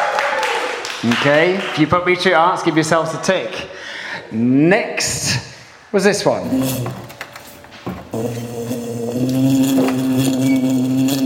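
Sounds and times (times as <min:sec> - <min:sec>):
speech: 0:01.0 - 0:07.1, 0:08.1 - 0:09.6
bee buzzing: 0:08.1 - 0:11.2.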